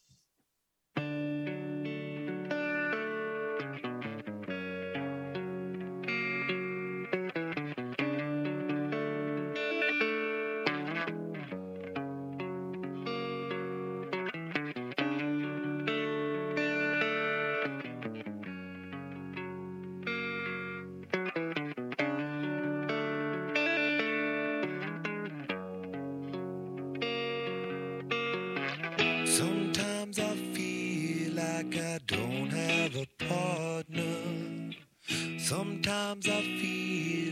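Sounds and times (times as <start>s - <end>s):
electric guitar playing chorus-tinged rock intro: 1.0s - 37.2s.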